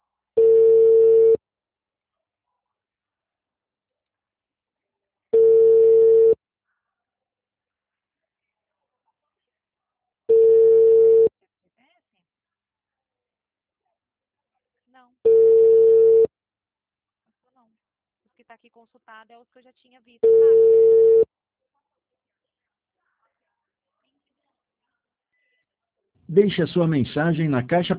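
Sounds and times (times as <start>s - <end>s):
ringback tone of an outgoing telephone call: 0.4s - 1.4s, 5.4s - 6.4s, 10.3s - 11.3s, 15.3s - 16.3s, 20.2s - 21.3s
speech: 18.4s - 21.0s, 26.3s - 27.9s.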